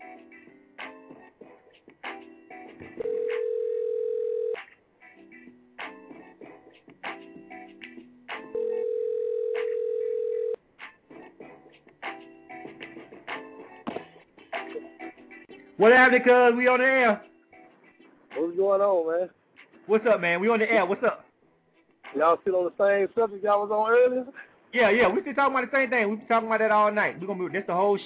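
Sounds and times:
telephone dial tone as a call is placed: 0:03.0 - 0:04.6, 0:08.6 - 0:10.6
speech: 0:15.8 - 0:17.3, 0:18.6 - 0:21.1, 0:22.2 - 0:28.0.

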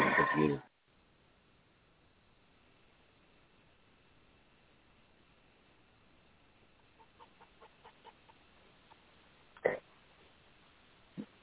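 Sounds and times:
speech: 0:00.3 - 0:00.7
chickens clucking: 0:06.6 - 0:09.8
chicken squawking: 0:07.0 - 0:09.0.

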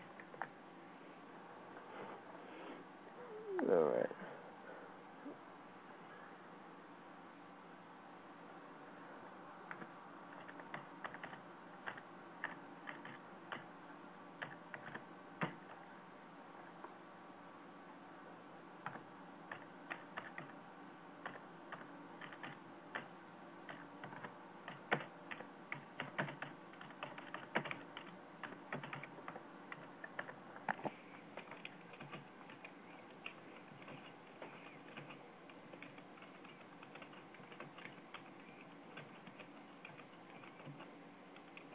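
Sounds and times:
steady low hum: 0:00.0 - 0:41.7
typing on a keyboard: 0:09.7 - 0:13.7, 0:14.4 - 0:15.6, 0:18.8 - 0:20.6, 0:21.2 - 0:23.1, 0:23.7 - 0:30.8, 0:31.4 - 0:41.7.

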